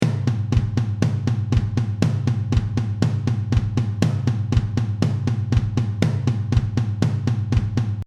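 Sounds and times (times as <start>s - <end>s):
drums without snare drum: 0.0s - 8.0s.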